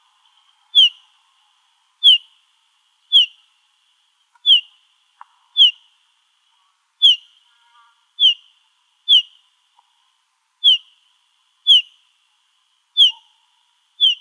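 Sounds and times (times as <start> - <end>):
olive warbler whistled calls: 0.7 - 1.0, 2.0 - 2.3, 3.1 - 3.4, 4.4 - 4.7, 5.6 - 5.8, 7.0 - 7.3, 8.2 - 8.4, 9.1 - 9.4, 10.6 - 10.9, 11.7 - 11.9, 13.0 - 13.3, 14.0 - 14.2
faint click: 5.2 - 5.4.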